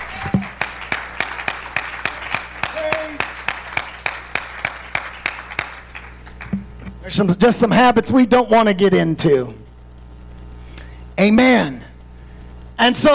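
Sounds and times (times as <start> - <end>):
audience clapping hands in steady unison: 0.0 - 6.6
speech: 7.1 - 9.6, 11.2 - 11.8, 12.8 - 13.1.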